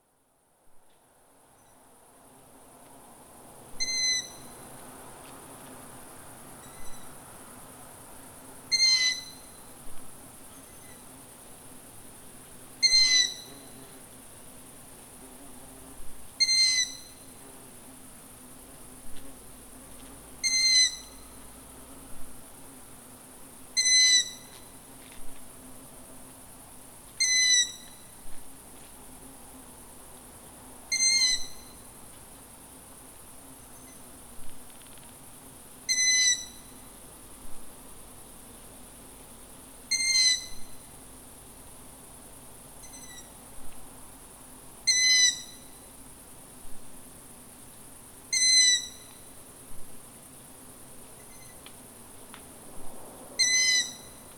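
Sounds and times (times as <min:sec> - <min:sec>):
long-eared owl calling: 0:03.8 - 0:04.4, 0:08.7 - 0:09.4, 0:12.8 - 0:13.5, 0:16.4 - 0:17.1, 0:20.4 - 0:21.1, 0:23.8 - 0:24.4, 0:27.2 - 0:27.8, 0:30.9 - 0:31.6, 0:35.9 - 0:36.6, 0:39.9 - 0:40.7, 0:44.9 - 0:45.6, 0:48.3 - 0:49.1, 0:53.4 - 0:54.2.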